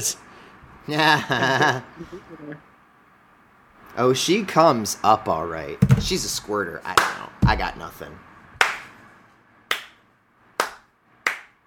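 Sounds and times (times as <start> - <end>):
speech: 0.0 - 2.7, 4.0 - 8.3
slow hand clapping: 8.6 - 8.9, 9.7 - 10.0, 10.6 - 11.6.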